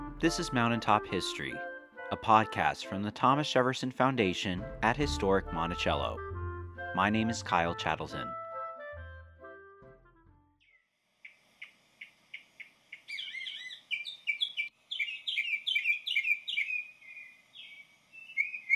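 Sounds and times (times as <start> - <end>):
speech: 0.2 - 6.3, 6.9 - 8.4
mockingbird song mimicking other birds: 12.3 - 18.7.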